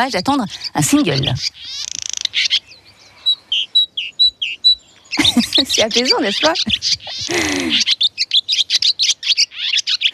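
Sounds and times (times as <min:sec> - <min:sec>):
speech: 0:00.0 - 0:02.5, 0:05.6 - 0:08.0
swallow twittering: 0:00.0 - 0:10.1
laughter: 0:05.2 - 0:07.9.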